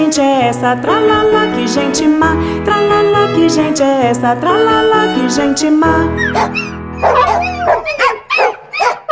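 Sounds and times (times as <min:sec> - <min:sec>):
speech: 0:00.1 - 0:08.0
dogs barking and yipping: 0:06.2 - 0:09.1.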